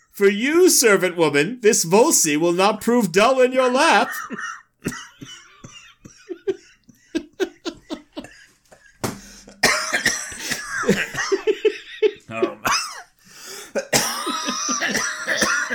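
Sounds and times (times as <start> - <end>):
speech: 0.2 - 5.4
person coughing: 4.0 - 6.8, 8.3 - 11.6, 13.8 - 15.7
laughter and giggling: 4.0 - 9.0, 10.4 - 12.9, 13.8 - 15.7.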